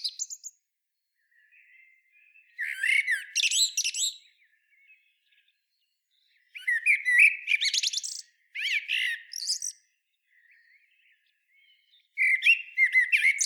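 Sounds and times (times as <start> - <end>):
Common blackbird Turdus merula singing: 0.0 - 0.6, 1.2 - 13.4.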